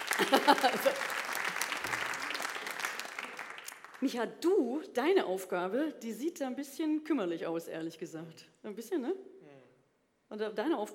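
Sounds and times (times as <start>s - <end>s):
laughter: 0.0s - 2.6s
audience applause: 0.0s - 4.0s
speech: 0.3s - 1.2s, 4.0s - 9.3s, 10.3s - 10.9s.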